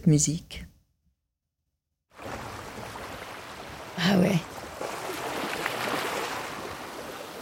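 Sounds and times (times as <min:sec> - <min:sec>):
speech: 0:00.0 - 0:00.7, 0:04.0 - 0:04.5
sea waves rushing: 0:02.2 - 0:07.4.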